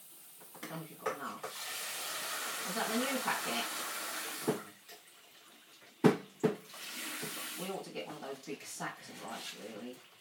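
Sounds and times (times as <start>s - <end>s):
tap water running: 0.4s - 2.8s, 4.2s - 5.0s, 5.8s - 7.5s
speech: 0.7s - 1.6s, 2.7s - 4.6s, 7.8s - 10.2s.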